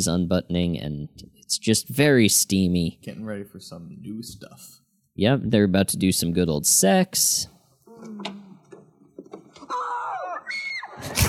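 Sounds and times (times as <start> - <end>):
speech: 0.0 - 8.4
soft moaning vocal sounds: 7.8 - 9.0
woman screaming in a TV scene: 9.6 - 11.2.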